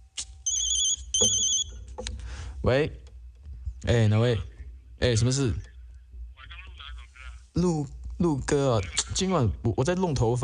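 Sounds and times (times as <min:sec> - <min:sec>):
telephone ringing with bright high electronic trilling: 0:00.5 - 0:01.7
speech: 0:01.2 - 0:01.5, 0:02.6 - 0:03.0, 0:03.8 - 0:05.7, 0:07.6 - 0:10.4.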